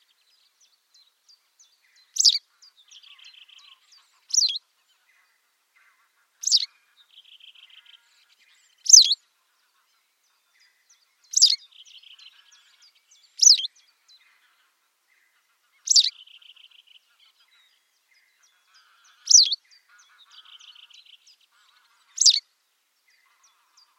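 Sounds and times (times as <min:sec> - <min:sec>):
white wagtail calling: 0:02.1 - 0:04.7, 0:11.3 - 0:13.7, 0:15.9 - 0:16.5, 0:18.7 - 0:20.9, 0:21.6 - 0:22.4.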